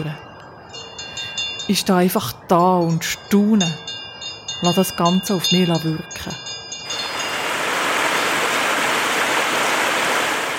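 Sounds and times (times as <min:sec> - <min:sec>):
speech: 0:00.0 - 0:00.3, 0:01.7 - 0:03.9, 0:04.6 - 0:06.4
tonal chime: 0:00.0 - 0:01.8, 0:02.5 - 0:07.5
spring water cascading in small waterfalls over stones: 0:06.9 - 0:10.5.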